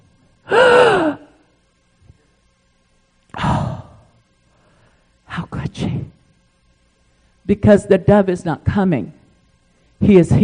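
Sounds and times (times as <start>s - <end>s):
loud dramatic gasp sliding downward in pitch: 0.5s - 1.4s, 3.3s - 5.0s
speech: 7.5s - 9.2s, 10.0s - 10.4s.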